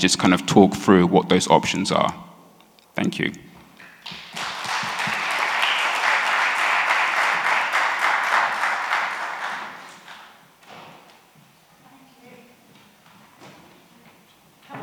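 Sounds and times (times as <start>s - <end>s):
speech: 0.0s - 2.3s, 3.0s - 3.4s
audience applauding a panel of speakers: 3.8s - 10.4s.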